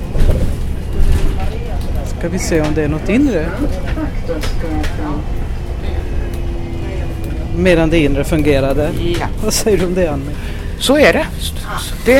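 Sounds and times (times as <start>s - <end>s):
low engine rumble of a moving bus: 0.0s - 12.1s
road noise inside a moving bus: 0.0s - 12.1s
speech: 2.2s - 5.4s, 7.6s - 12.1s.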